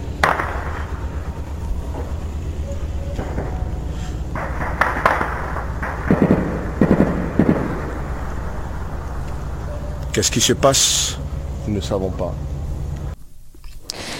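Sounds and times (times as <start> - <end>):
gunfire at a military camp at night: 0.0 - 9.6
steady low outdoor rumble: 0.0 - 13.7
speech: 10.2 - 12.5.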